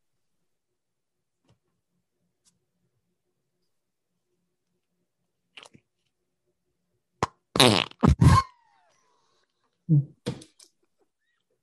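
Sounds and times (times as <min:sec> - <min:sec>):
loud fart noises: 0:07.2 - 0:08.5.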